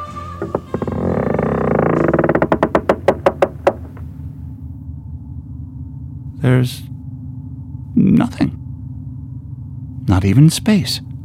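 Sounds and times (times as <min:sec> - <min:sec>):
tower door hinge creaking open: 0:00.0 - 0:04.1
speech: 0:00.4 - 0:00.6, 0:06.5 - 0:06.9, 0:08.2 - 0:08.6, 0:10.2 - 0:11.1.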